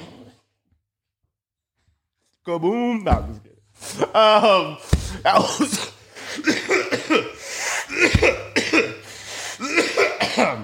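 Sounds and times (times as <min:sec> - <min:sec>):
speech: 0:02.4 - 0:08.5
person coughing into phone microphone: 0:05.1 - 0:10.6.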